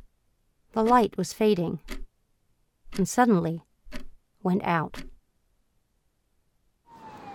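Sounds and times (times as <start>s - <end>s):
speech: 0.7s - 2.0s, 3.0s - 3.7s, 4.4s - 5.1s
broad traffic roar: 6.9s - 7.3s
emergency vehicle siren wailing: 6.9s - 7.3s.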